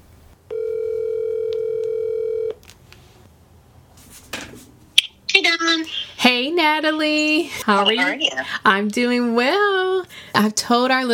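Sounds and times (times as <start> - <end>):
telephone dial tone: 0.5 - 2.6
speech: 5.5 - 11.1.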